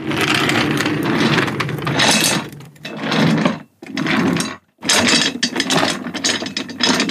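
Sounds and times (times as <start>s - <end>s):
chair scraping and creaking across a wooden floor: 0.0s - 6.3s.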